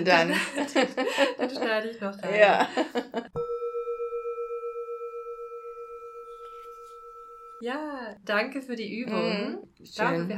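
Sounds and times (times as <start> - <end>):
speech: 0.0 - 3.4, 7.6 - 10.3
laughter: 0.2 - 3.3
gong struck at end of meditation exercise: 3.4 - 7.6.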